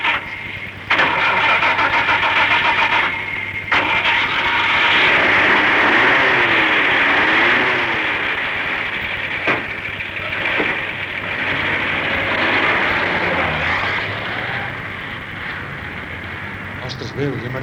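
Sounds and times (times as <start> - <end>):
car engine cranking and starting: 0.0 - 17.6.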